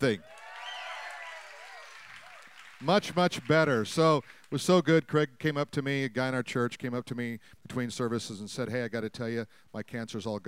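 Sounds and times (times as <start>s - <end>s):
speech: 0.0s - 0.3s, 2.8s - 10.4s
people cheering: 0.0s - 4.2s
audience clapping: 0.0s - 4.8s.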